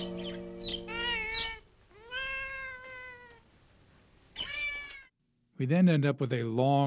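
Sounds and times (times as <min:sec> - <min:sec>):
hungry cat meowing loudly: 0:00.0 - 0:03.4, 0:04.4 - 0:05.1
speech: 0:05.6 - 0:06.8.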